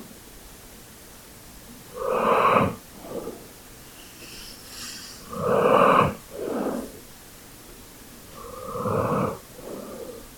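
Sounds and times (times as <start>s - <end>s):
dog snorting: 1.9s - 7.0s, 8.3s - 10.3s.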